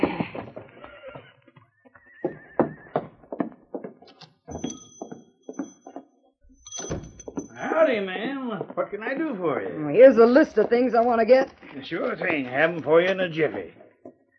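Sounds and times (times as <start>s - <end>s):
horse whinnying: 0.0s - 3.2s
horse hooves clip-clopping to a stop: 0.0s - 6.1s, 7.2s - 14.3s
speech: 7.9s - 13.8s.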